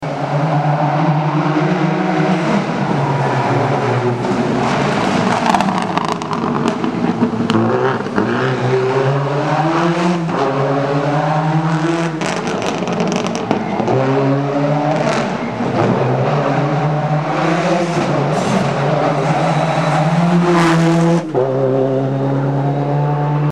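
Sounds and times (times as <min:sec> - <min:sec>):
Subaru Impreza car engine: 0:00.0 - 0:23.5.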